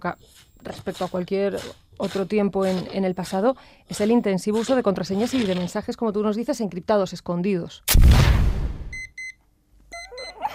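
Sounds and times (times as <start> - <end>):
speech: 0.0 - 8.6
burst of noise: 7.9 - 8.9
electronic alarm clock beeping: 9.9 - 10.4.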